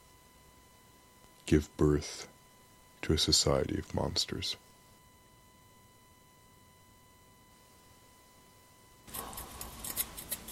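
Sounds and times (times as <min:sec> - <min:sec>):
speech: 0:01.5 - 0:02.4, 0:03.0 - 0:04.6
scissors snipping with crisp metallic cuts: 0:09.1 - 0:10.5.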